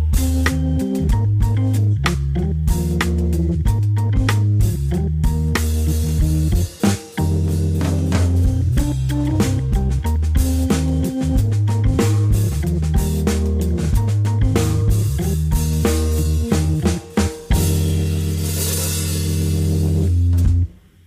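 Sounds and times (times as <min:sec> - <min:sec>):
steady bass line: 0:00.0 - 0:20.8
music playing at the Kulturpalast in Dresden: 0:00.0 - 0:21.0
bright percussion: 0:04.1 - 0:20.6.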